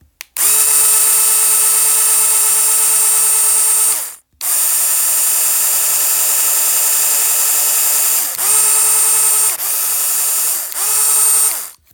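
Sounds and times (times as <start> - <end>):
Lego motor: 0.4 - 11.8.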